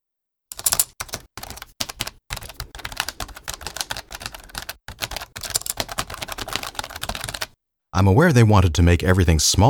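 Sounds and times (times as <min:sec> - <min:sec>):
typing on a laptop keyboard with soft rubbery keys: 0:00.5 - 0:07.6
speech: 0:08.0 - 0:09.6.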